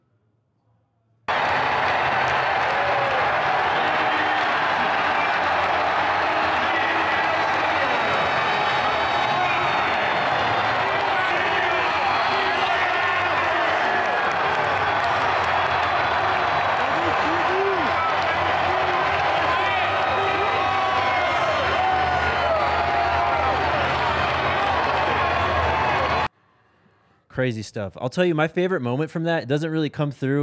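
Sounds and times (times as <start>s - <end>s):
people whistling in a stadium crowd: 1.3s - 22.6s
huge stadium crowd in Boulder Colorado cheering an entrance: 1.3s - 26.3s
speech: 27.4s - 30.4s.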